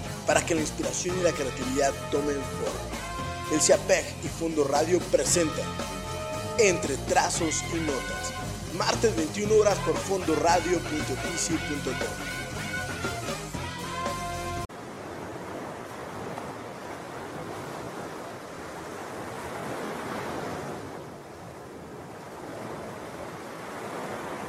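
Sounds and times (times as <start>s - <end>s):
music: 0.0s - 14.7s
ocean surf waves breaking and washing ashore: 0.0s - 24.4s
speech: 0.3s - 6.0s, 6.6s - 12.4s.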